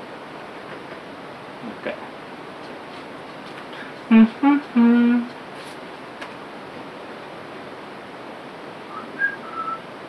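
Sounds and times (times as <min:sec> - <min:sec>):
steady hiss: 0:00.0 - 0:10.0
speech: 0:01.6 - 0:02.2, 0:04.1 - 0:04.9
person whistling two short thin notes: 0:08.9 - 0:09.8.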